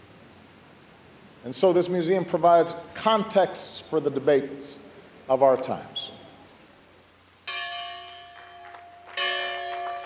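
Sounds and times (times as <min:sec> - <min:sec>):
low steady hum: 0:00.0 - 0:10.0
speech: 0:01.4 - 0:06.2
large historic church bell striking: 0:07.5 - 0:10.0.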